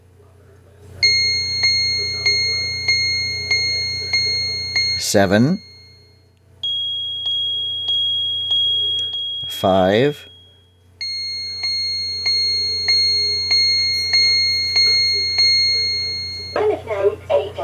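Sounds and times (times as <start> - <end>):
faint low hum: 0.0 - 17.6
several chiming clocks striking the hour: 1.0 - 17.6
speech: 5.0 - 5.7, 9.6 - 10.3.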